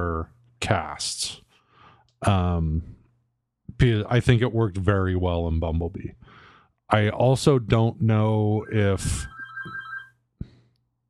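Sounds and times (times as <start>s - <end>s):
speech: 0.0s - 1.4s, 2.2s - 3.0s, 3.8s - 9.4s
phone ringtone in a bright repeating electronic pattern: 8.7s - 10.1s.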